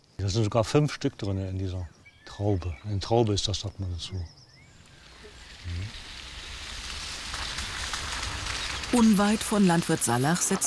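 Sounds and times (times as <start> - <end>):
speech: 0.2 - 4.4, 5.6 - 6.0, 8.9 - 10.6
steady rain: 4.9 - 10.6.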